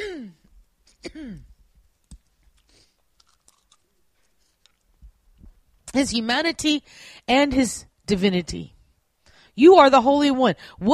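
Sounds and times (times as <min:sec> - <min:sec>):
speech: 0:01.0 - 0:01.5, 0:05.9 - 0:08.8, 0:09.6 - 0:10.9
wet clicks and crunchy chewing of a cough drop: 0:02.0 - 0:05.0
wrapper-like crinkle of a cough drop: 0:02.6 - 0:04.9.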